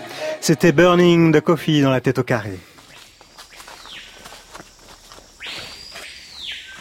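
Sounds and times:
speech: 0.5 - 2.7
papayo bird loud whistle-like territorial song: 2.9 - 4.2, 5.4 - 6.7.

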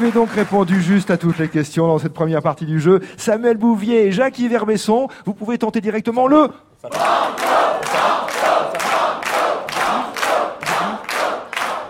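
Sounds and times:
speech: 0.0 - 8.1
studio audience at a quiz game chanting in unison: 6.9 - 11.8.

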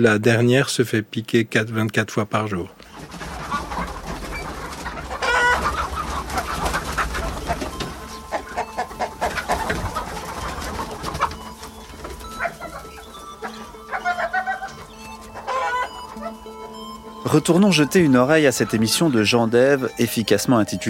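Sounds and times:
speech: 0.0 - 3.2, 17.3 - 20.8
steady murmur of barnyard noise: 2.4 - 20.8
flock of hens clucking and cackling: 2.8 - 20.8.

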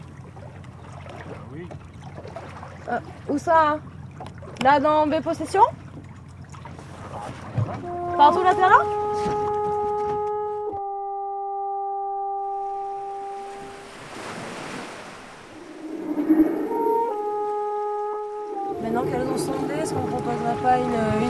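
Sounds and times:
rushing water: 0.0 - 10.0, 12.5 - 21.2
boat engine droning hum: 0.0 - 21.2
speech: 1.6 - 5.8, 7.8 - 9.4
indistinct voices: 18.6 - 21.2.

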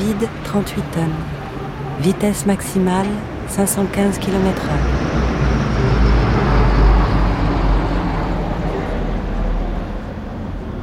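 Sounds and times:
speech: 0.2 - 1.4, 2.0 - 5.3
C-160 Transall new-generation military transport aircraft roar: 4.6 - 10.7.

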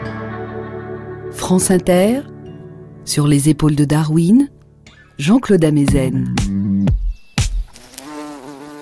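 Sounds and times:
speech: 1.5 - 2.3, 3.1 - 4.6, 5.2 - 6.6
bumblebees buzzing: 7.5 - 8.8.

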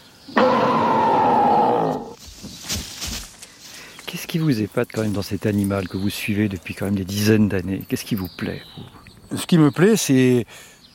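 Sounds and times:
noise: 0.0 - 10.9
person imitating a big bear's growl: 0.3 - 2.2
speech: 4.2 - 10.7.

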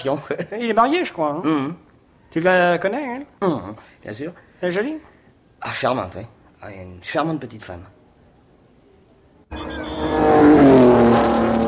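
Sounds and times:
speech: 0.0 - 8.0, 9.5 - 10.0
race car engines roaring at the 24 Hours of Le Mans: 9.5 - 11.6.

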